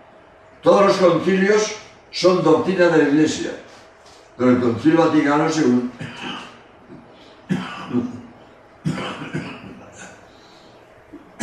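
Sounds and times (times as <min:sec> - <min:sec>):
speech: 0:00.6 - 0:03.7, 0:04.4 - 0:06.4
person coughing during a lecture: 0:06.0 - 0:06.6, 0:07.5 - 0:08.2, 0:08.8 - 0:10.3
breathing: 0:07.1 - 0:07.5, 0:10.2 - 0:11.0.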